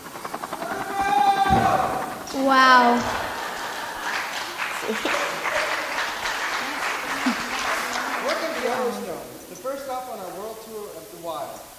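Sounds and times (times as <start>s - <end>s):
helicopter flying overhead with pulsing rotor chop: 0.0s - 11.0s
speech: 1.5s - 3.2s, 4.9s - 5.2s, 9.6s - 11.7s
laughter: 1.5s - 9.5s.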